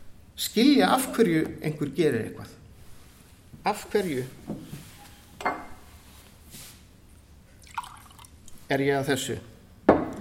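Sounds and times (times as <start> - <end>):
speech: 0.4 - 2.6, 3.6 - 4.7, 8.7 - 9.5
liquid pouring into a glass: 7.6 - 8.7.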